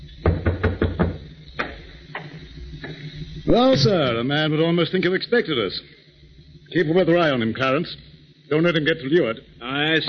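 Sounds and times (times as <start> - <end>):
knocking on an upstairs door in a building: 0.2 - 1.2
speech: 3.4 - 6.0, 6.7 - 10.0.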